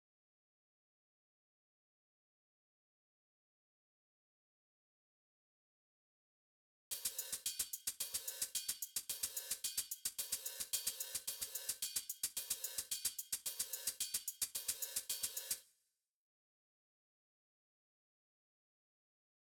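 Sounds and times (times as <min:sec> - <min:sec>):
hi-hat: 0:06.9 - 0:15.6.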